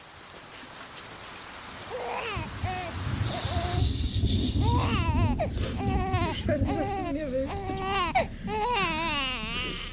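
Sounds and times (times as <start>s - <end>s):
newborn infant wailing at night shortly after birth: 1.9s - 3.7s, 4.6s - 9.9s.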